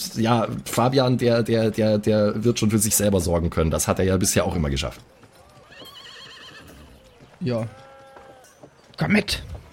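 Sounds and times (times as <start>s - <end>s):
speech: 0.2s - 5.2s, 7.4s - 7.8s, 9.0s - 9.6s
horse hooves clip-clopping: 0.2s - 9.7s
horse neighing: 5.4s - 8.6s.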